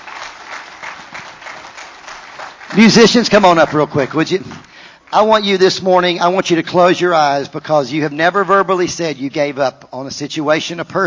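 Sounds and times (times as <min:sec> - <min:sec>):
church congregation applauding during a morning service: 0:00.0 - 0:05.7
speech: 0:02.8 - 0:11.0.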